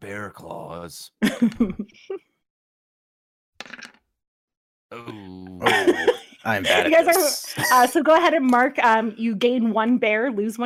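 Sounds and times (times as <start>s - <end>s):
speech: 0.1s - 2.2s, 4.9s - 10.6s
laughter: 1.2s - 2.2s, 5.0s - 8.0s
two dice rolled during a tabletop role-playing game: 3.6s - 4.0s.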